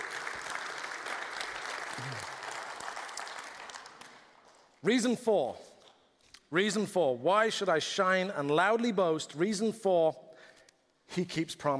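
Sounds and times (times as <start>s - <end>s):
audience clapping: 0.0s - 4.8s
speech: 2.0s - 2.4s, 4.8s - 5.7s, 6.5s - 10.2s, 11.2s - 11.7s.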